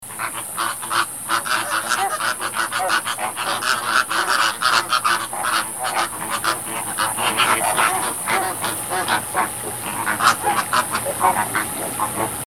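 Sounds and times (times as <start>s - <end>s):
frogs calling in a dense chorus of clucking notes: 0.0s - 12.4s
high hiss: 0.0s - 12.4s.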